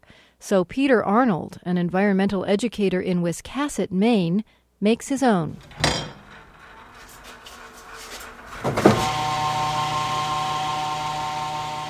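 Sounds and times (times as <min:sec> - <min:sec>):
speech: 0:00.4 - 0:06.0
loud metallic clank of metal oil drums: 0:05.6 - 0:09.1
knocks and rattles of handled metal oil drums: 0:05.6 - 0:09.2
hydraulic hoist motor whining: 0:05.6 - 0:11.8.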